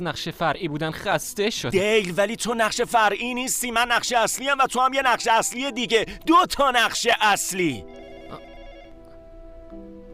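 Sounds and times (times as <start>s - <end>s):
speech: 0.0s - 8.5s
telephone ringing with a steady electronic ring: 6.7s - 9.2s.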